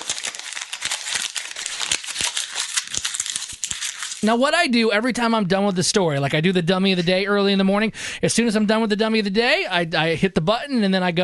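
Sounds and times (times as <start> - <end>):
paper being crinkled and crumpled up: 0.0 - 4.4
speech: 4.2 - 11.2.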